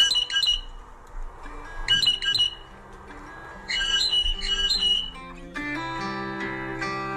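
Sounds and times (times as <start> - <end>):
blue jay Cyanocitta cristata alarm calls: 0.0 - 1.0, 1.7 - 5.4
steady tonal hum: 0.0 - 7.1.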